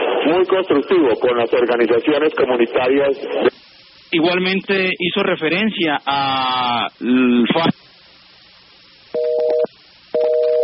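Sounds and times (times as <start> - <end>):
speech: 0.2 - 7.8
dual-tone busy signal beeps after a dropped phone call: 9.2 - 10.6.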